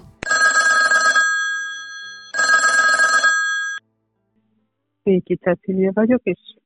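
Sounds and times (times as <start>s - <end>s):
telephone ringing on an outgoing call: 0.2s - 3.8s
speech: 5.0s - 6.6s.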